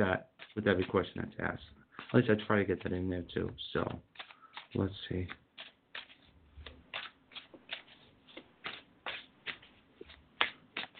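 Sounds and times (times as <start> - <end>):
speech: 0.0 - 5.4
deck of tarot cards shuffled in riffling bursts: 1.9 - 2.9, 3.8 - 10.9.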